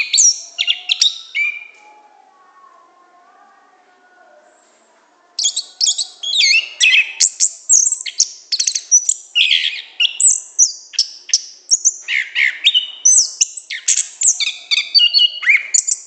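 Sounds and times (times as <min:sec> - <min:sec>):
Orange-headed thrush song in the gacor ngeplong style: 0:00.0 - 0:01.8, 0:05.4 - 0:16.0.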